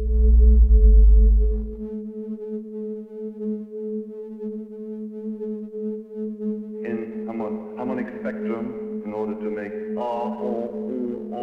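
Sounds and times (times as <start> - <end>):
low rumbling drone: 0.0 - 2.1
electronic tone from superimposed sine waves from sine wave generators: 0.0 - 2.5
speech: 8.3 - 11.4.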